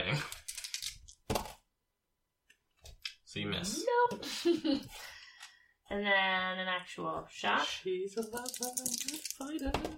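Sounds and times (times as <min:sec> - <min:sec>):
speech: 0:00.1 - 0:00.4, 0:03.3 - 0:05.2, 0:05.9 - 0:09.9
dice clattering across a hard tabletop: 0:08.3 - 0:09.7.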